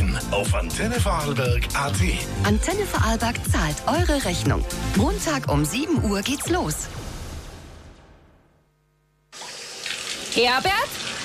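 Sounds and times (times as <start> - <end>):
speech: 0.2 - 7.0, 10.4 - 11.2
shower water spraying: 9.4 - 11.2.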